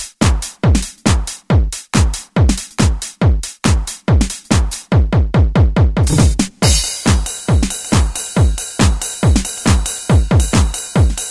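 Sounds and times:
Roland SR-JV80-06 dance drum kit: 0.2s - 11.2s.

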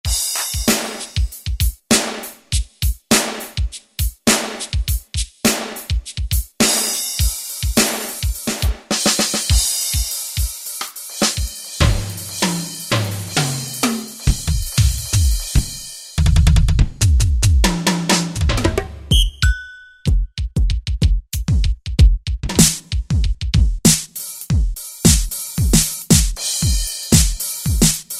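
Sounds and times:
drum kit from a Yamaha TG500 synthesizer: 0.0s - 28.1s.

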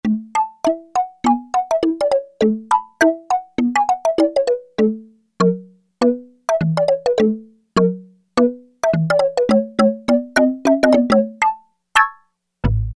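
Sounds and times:
synthesizer bottle marimba: 0.0s - 12.2s.

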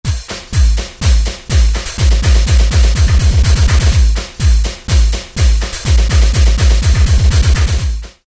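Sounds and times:
Goa trance drum fill on a groovebox: 0.1s - 8.2s.

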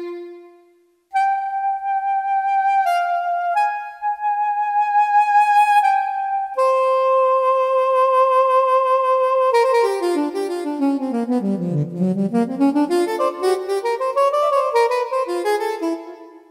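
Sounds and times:
Yamaha YPT-400 keyboard music: 1.2s - 16.4s.

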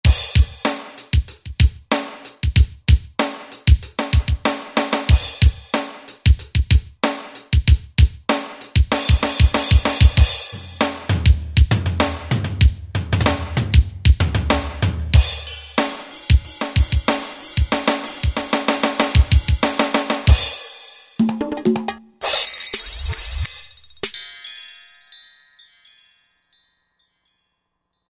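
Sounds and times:
synthesizer power drum set rhythm: 0.0s - 23.2s.

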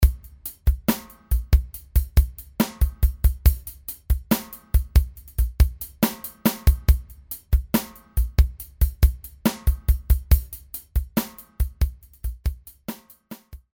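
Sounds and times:
classic rock beat: 0.0s - 13.7s.

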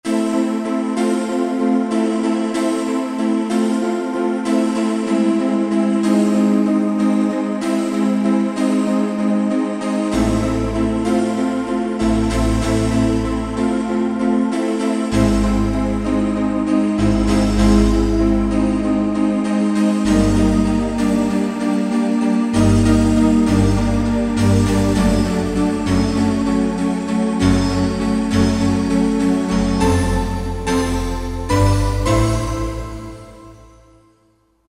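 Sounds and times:
Roland SR-JV80-03 synthesizer piano: 0.0s - 34.3s.

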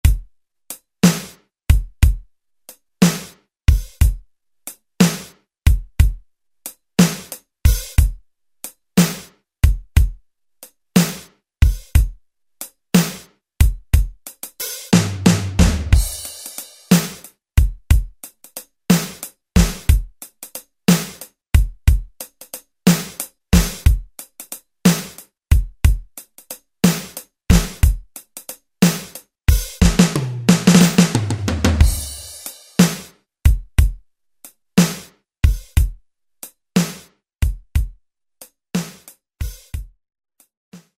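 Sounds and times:
drum machine playing blues preset patterns: 1.0s - 4.2s, 5.0s - 6.2s, 7.0s - 8.2s, 9.0s - 10.2s, 11.0s - 12.2s, 13.0s - 34.0s, 34.8s - 36.0s, 36.8s - 38.0s, 38.8s - 39.9s.

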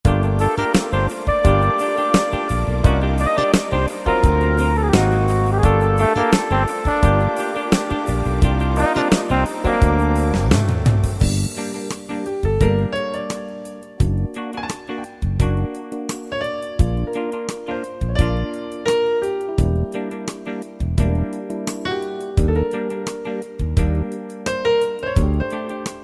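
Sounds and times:
R&B ballad on Yamaha PSR-3000 keyboard factory style: 0.0s - 26.0s.

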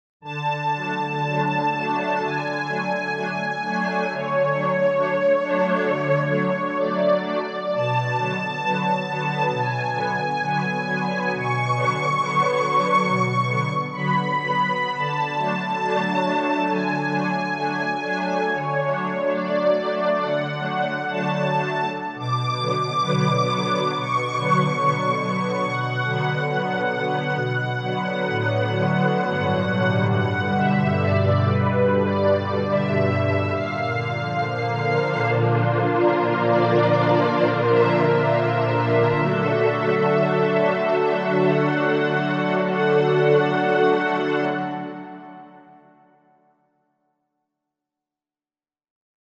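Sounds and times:
Korg MSC-1S synth saw strings: 0.3s - 45.2s.

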